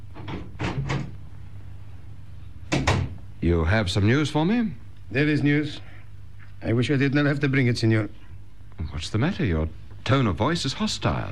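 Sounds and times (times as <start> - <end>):
door clunking and rattling as it opens: 0.1 - 1.2, 2.7 - 3.2
speech: 3.4 - 5.9, 6.6 - 8.2, 8.8 - 11.3.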